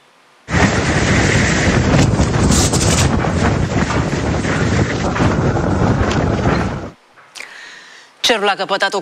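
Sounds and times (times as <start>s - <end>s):
strong wind during a sandstorm buffeting the microphone: 0.5s - 7.0s
speech: 8.3s - 9.0s.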